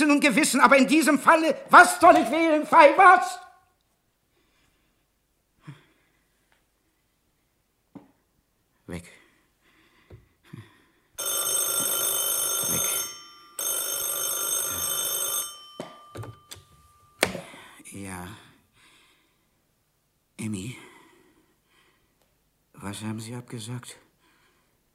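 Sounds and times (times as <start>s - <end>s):
speech: 0.0s - 3.5s, 22.8s - 24.0s
old-style telephone bell ringing for an incoming call: 11.2s - 17.6s.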